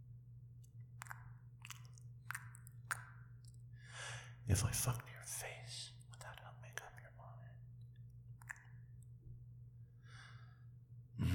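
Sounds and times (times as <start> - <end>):
low steady hum: 0.0 - 11.3
speech: 4.5 - 5.9
soft breathy gasps: 11.2 - 11.3.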